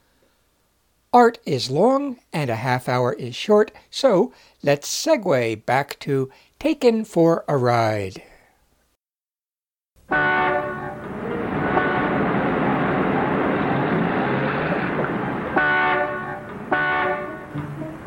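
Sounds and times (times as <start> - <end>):
speech: 1.2 - 8.3
car horns honking in a morning rush-hour traffic jam: 10.1 - 17.7
rumbling traffic background: 10.2 - 18.0.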